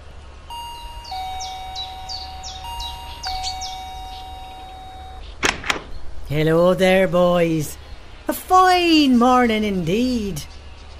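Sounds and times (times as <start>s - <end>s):
electronic doorbell chiming: 0.5s - 5.3s
speech: 6.3s - 10.5s.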